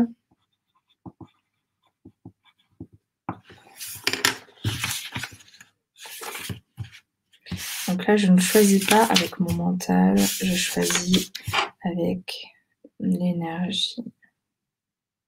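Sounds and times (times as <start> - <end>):
pen scratching on paper writing a note: 0.3 - 2.9, 6.0 - 11.7
speech: 8.1 - 14.2.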